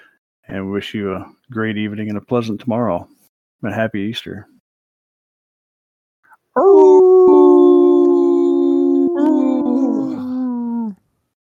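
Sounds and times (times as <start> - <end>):
speech: 0.5 - 4.6
person imitating a wolf howl: 6.6 - 11.0.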